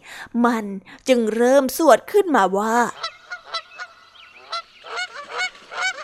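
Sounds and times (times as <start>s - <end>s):
speech: 0.3s - 3.1s
flock of geese honking: 2.9s - 6.0s.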